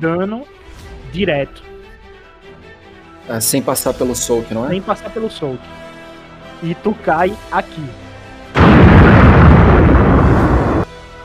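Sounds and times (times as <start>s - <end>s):
speech: 0.0s - 1.7s, 3.2s - 5.9s, 6.6s - 8.0s
huge explosion sound effect: 8.6s - 10.9s.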